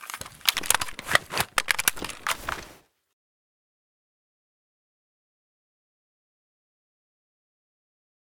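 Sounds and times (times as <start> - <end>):
Galil rifle reloading: 0.0 - 2.8.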